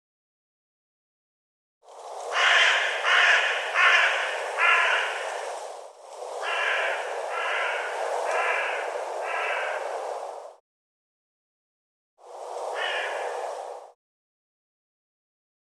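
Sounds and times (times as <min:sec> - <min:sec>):
bird giving harsh rasping calls: 0:02.3 - 0:05.4, 0:06.4 - 0:09.9, 0:12.7 - 0:13.4.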